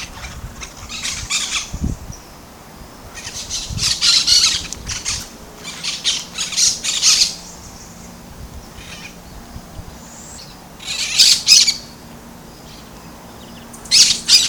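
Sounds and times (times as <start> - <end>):
brown-throated parakeet screeching at Bubali in Aruba: 0.0 - 1.7, 3.2 - 7.4, 10.8 - 11.8, 13.9 - 14.4.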